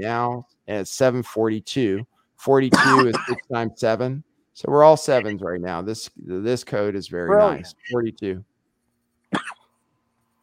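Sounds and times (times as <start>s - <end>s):
speech: 0.0s - 8.5s
sharp cough: 2.7s - 3.5s, 9.3s - 9.7s.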